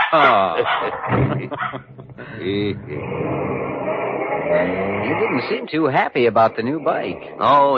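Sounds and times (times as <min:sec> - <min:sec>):
dog barking and yipping excitedly: 0:00.0 - 0:01.9
laughter: 0:00.0 - 0:03.1
speech: 0:00.1 - 0:03.7, 0:04.5 - 0:07.7.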